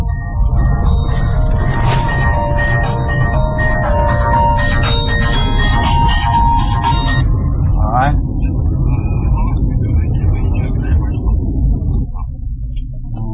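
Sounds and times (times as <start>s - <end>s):
mobile phone ringing with electronic tune inside a car in the countryside: 0.0s - 7.2s
steady low rumble of car interior: 0.0s - 13.3s.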